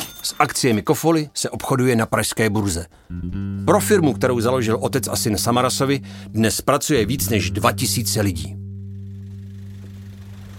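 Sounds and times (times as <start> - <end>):
speech: 0.3 - 8.6
firefighters' motorboat engine droning at a flooded area: 3.6 - 6.4, 7.0 - 10.5.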